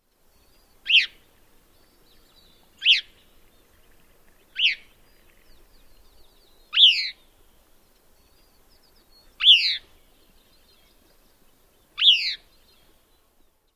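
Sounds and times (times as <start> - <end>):
Gray-cheeked Thrush calls: 0.9 - 1.2, 2.8 - 3.1, 4.6 - 4.9, 6.7 - 7.2, 9.4 - 9.8, 12.0 - 12.4.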